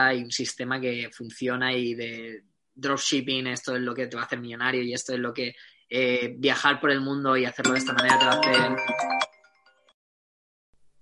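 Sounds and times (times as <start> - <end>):
speech: 0.0 - 9.2
short electronic mobile phone ringtone: 7.6 - 10.0.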